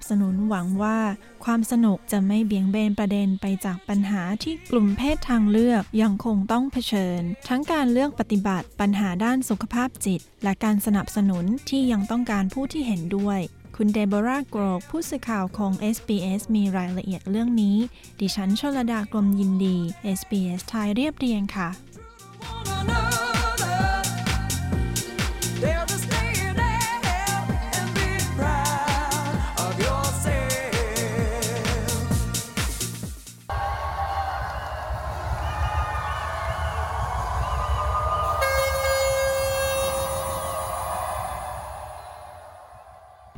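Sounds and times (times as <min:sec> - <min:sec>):
speech: 0:00.1 - 0:23.3
loud pounding dance music with a steady beat: 0:22.0 - 0:38.4
roar of a large crowd at a street parade: 0:33.5 - 0:38.4
high sustained tones: 0:37.5 - 0:43.3.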